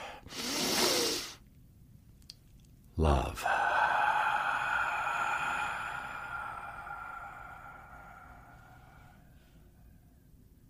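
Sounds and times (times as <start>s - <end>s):
deep inhale through the nose during a meditation exercise: 0.0s - 1.4s, 3.6s - 9.4s
speech: 3.0s - 3.6s.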